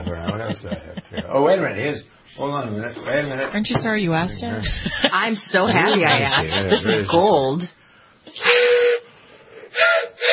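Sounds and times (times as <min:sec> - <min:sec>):
laughter: 0:00.0 - 0:01.6, 0:04.5 - 0:07.6
speech: 0:00.1 - 0:08.7
breathy train whistle blasts in a studio: 0:08.3 - 0:10.3.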